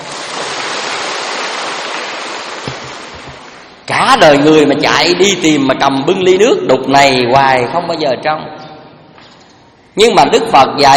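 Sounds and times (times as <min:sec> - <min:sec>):
audience applause at a Buddhist dharma talk: 0:00.0 - 0:03.8
speech: 0:03.9 - 0:08.6, 0:10.0 - 0:10.9.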